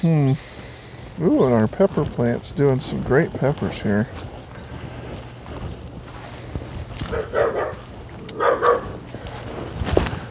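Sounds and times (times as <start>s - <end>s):
speech: 0.0s - 0.5s, 1.2s - 4.3s
outdoor noise: 0.0s - 10.3s
steady low hum: 0.0s - 10.3s
dogs barking: 7.0s - 9.2s.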